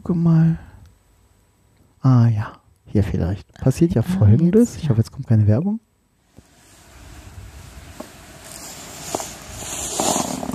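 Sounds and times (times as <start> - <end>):
steady hiss: 0.0 - 10.5
speech: 0.1 - 0.7, 2.0 - 5.9
fabric of trousers rustling: 6.4 - 10.5
soft crunching footsteps in snow: 6.4 - 10.5.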